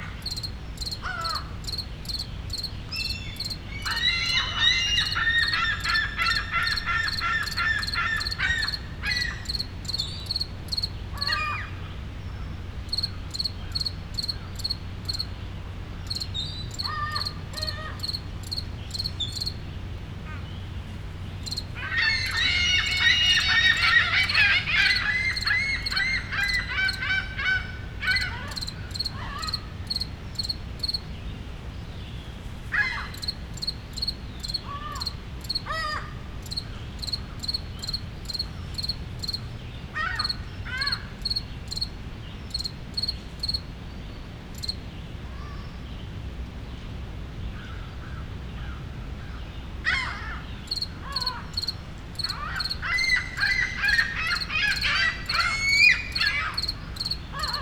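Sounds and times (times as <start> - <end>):
solo cricket in a park in Montreal Canada: 0.0 - 11.6, 12.6 - 15.4, 16.0 - 19.6, 21.4 - 31.1, 32.8 - 43.7, 44.5 - 44.8, 50.6 - 57.6
city rumble in Montreal Canada: 0.0 - 47.5, 48.2 - 57.6
seagulls in a park in Montreal Canada: 3.8 - 9.5, 21.8 - 28.6, 52.3 - 56.6.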